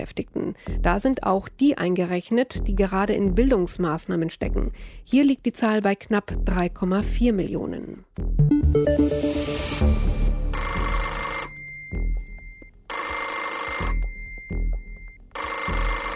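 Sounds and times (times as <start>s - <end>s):
speech: 0.0s - 9.8s
old-style telephone bell ringing: 10.5s - 16.1s.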